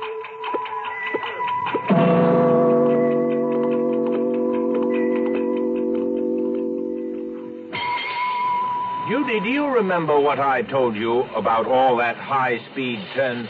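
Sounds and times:
clock ticking: 0.0 - 7.8
loud sustained droning chord: 1.8 - 10.0
speech: 9.4 - 13.4.

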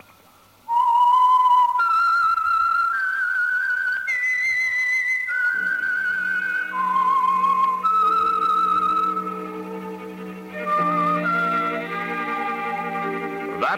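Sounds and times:
lone whistler whistling a slow eerie theme melody: 0.7 - 13.7
low orchestral accompaniment: 5.4 - 13.7.

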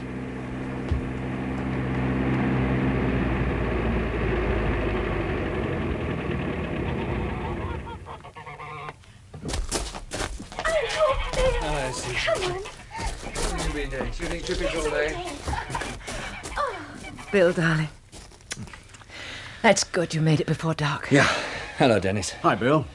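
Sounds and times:
car engine approaching and idling: 0.0 - 8.3, 11.1 - 18.9
laughter: 7.2 - 8.3, 10.6 - 17.4, 21.1 - 22.9
speech: 11.9 - 12.7, 13.8 - 15.6, 17.3 - 18.0, 19.6 - 22.9.

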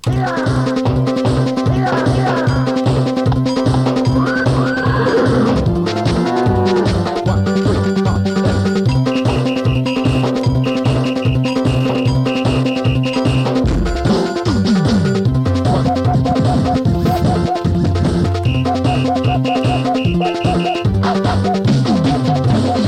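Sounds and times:
busy electronic instrumental piece with steady pulsing beat: 0.0 - 22.8
horse whinny sound effect from a computer: 4.1 - 7.2.

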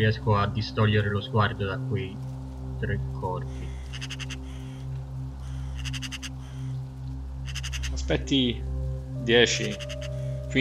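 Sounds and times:
speech: 0.0 - 4.2, 8.1 - 10.5
crows cawing: 3.5 - 8.0, 9.6 - 10.4.

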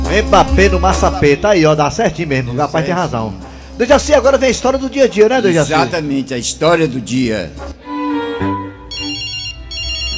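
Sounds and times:
speech: 0.1 - 7.8
telephone ringing in shrill bursts: 8.9 - 10.1.

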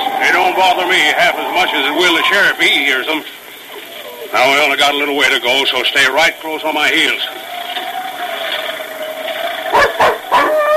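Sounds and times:
steady tonal hum: 0.0 - 10.6
speech: 0.6 - 3.4, 4.3 - 7.5
dog barking: 9.7 - 10.7.

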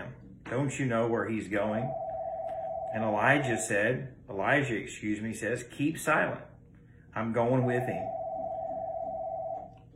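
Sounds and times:
low room hum: 0.0 - 9.9
speech: 0.5 - 2.0, 2.9 - 6.5, 7.1 - 8.2
telephone ringing with a steady electronic tone: 1.6 - 4.0, 7.5 - 9.9.

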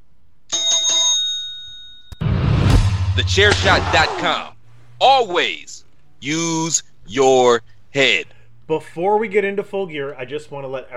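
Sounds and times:
bright bell ringing with quick strikes: 0.5 - 2.3
sudden burst of loud noisy sound: 2.2 - 4.4
speech: 3.2 - 10.9.

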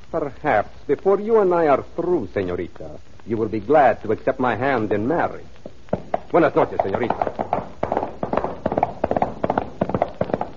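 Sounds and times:
speech: 0.1 - 5.6, 6.3 - 7.7
horse hooves clip-clopping on hard ground: 5.5 - 10.5.

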